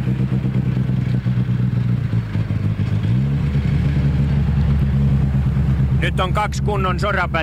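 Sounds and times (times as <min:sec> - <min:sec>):
rally car engine roaring and shifting gear at stage finish: 0:00.0 - 0:07.4
speech: 0:06.0 - 0:07.4.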